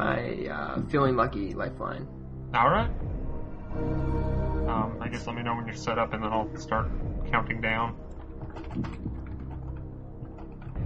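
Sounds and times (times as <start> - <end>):
speech: 0.0 - 9.1
typing on a computer keyboard: 8.1 - 10.8.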